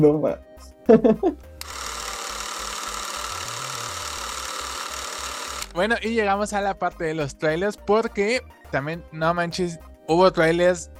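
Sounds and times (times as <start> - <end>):
speech: 0.0 - 1.5, 5.8 - 10.9
laughter: 0.9 - 1.4
semi-trailer truck engine droning as it passes by outside: 2.6 - 5.8.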